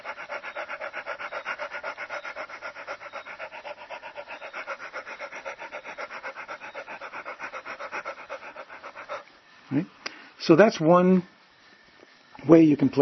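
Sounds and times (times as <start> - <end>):
person imitating a dog panting as a breathing exercise: 0.0 - 9.2
speech: 9.7 - 11.3, 12.5 - 13.0.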